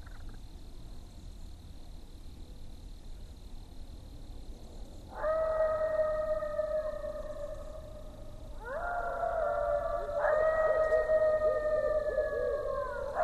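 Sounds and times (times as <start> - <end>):
several coyotes howling: 5.1 - 13.2.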